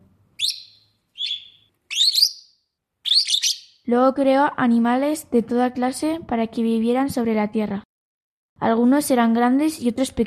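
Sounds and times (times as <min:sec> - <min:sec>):
high-pitched bird chirps: 0:00.4 - 0:03.9
speech: 0:03.9 - 0:07.9, 0:08.6 - 0:10.2.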